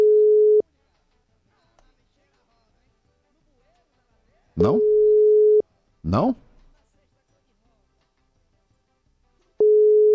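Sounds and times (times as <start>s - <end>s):
telephone busy tone on an unanswered call: 0.0s - 0.6s, 4.6s - 5.6s, 9.6s - 10.1s
speech: 4.6s - 4.9s, 6.0s - 6.5s.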